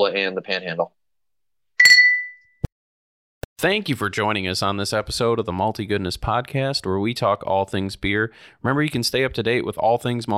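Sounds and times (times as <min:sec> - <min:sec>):
speech: 0:00.0 - 0:01.0, 0:03.6 - 0:10.3
beer glasses clinking in a toast: 0:01.8 - 0:02.5.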